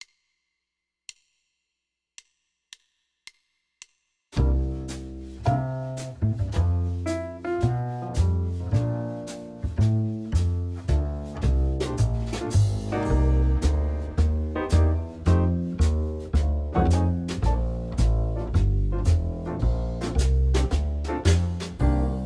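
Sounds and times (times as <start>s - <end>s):
two-five-one play-along backing music: 4.4s - 22.2s.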